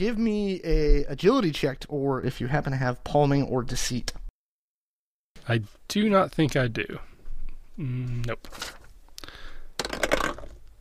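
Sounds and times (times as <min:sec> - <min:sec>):
speech: 0:00.0 - 0:04.2, 0:05.5 - 0:07.1, 0:07.8 - 0:08.8
short vocal hum: 0:07.8 - 0:08.4
dice clattering and tumbling across a hard table: 0:09.8 - 0:10.6.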